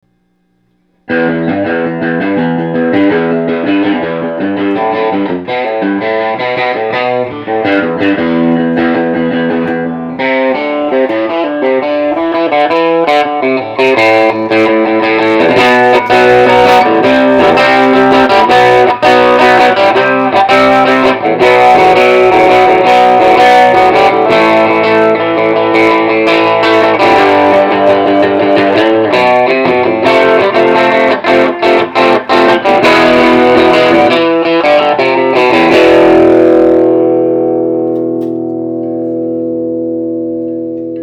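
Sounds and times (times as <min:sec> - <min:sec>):
Fender amp: 0:00.0 - 0:41.0.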